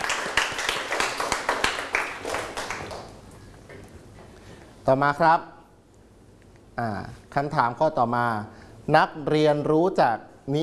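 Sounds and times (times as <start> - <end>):
students clapping in a classroom: 0.0 - 3.3
speech: 4.8 - 5.6, 6.8 - 10.6.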